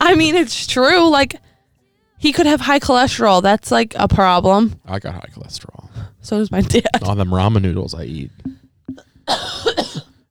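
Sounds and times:
speech: 0.1 - 1.5, 2.2 - 9.8
dry cough: 9.0 - 10.2.

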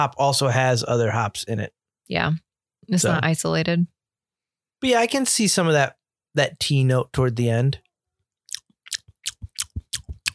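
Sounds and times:
speech: 0.0 - 4.0, 4.8 - 7.8
wet lip smacking while tasting a hoppy beer: 8.5 - 10.3.

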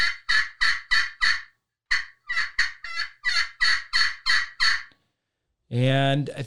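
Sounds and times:
turkey yelping made with a turkey call: 0.0 - 5.0
speech: 5.7 - 6.4.

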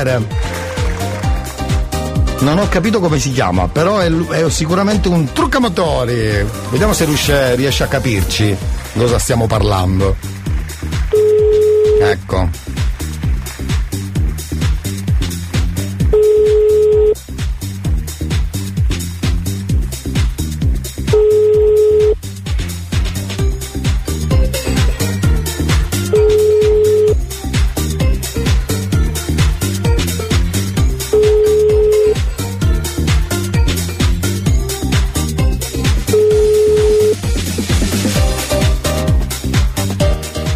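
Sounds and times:
speech: 0.0 - 0.5, 2.4 - 10.3, 12.0 - 12.7
music: 0.0 - 40.5
telephone ringback tone during outgoing call: 11.1 - 12.1, 16.1 - 17.2, 21.1 - 22.2, 26.1 - 27.2, 31.1 - 32.2, 36.1 - 37.3.

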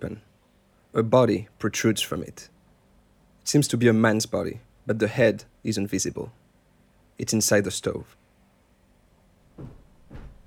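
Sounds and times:
speech: 0.0 - 0.3, 0.9 - 2.5, 3.4 - 6.4, 7.2 - 8.2
low hum: 0.0 - 10.4
door opening with dull wooden knocks: 9.6 - 10.4.

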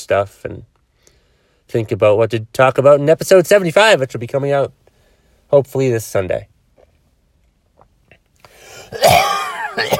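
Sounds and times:
speech: 0.0 - 0.7, 1.7 - 4.8, 5.5 - 6.5, 8.9 - 9.9
raspy cough with throat-clearing edge: 8.8 - 9.9.

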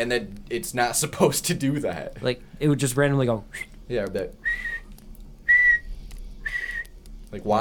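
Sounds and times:
speech: 0.0 - 4.7, 7.3 - 7.5
low hum: 0.0 - 7.5
high-pitched electronic whistle from a spirit box radio: 4.4 - 4.9, 5.5 - 6.9.

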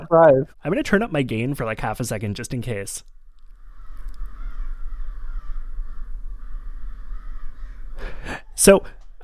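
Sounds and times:
speech: 0.0 - 3.2, 8.0 - 9.2
several crows cawing outdoors: 3.3 - 8.3.

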